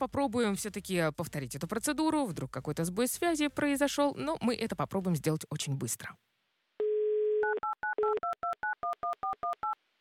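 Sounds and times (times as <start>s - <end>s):
speech: 0.0s - 6.4s
telephone dial tone: 6.8s - 9.8s.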